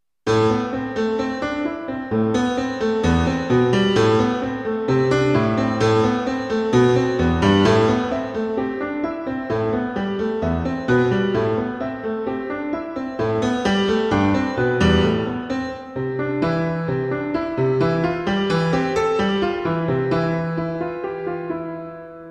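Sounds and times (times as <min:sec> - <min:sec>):
piano medley: 0:00.3 - 0:22.3.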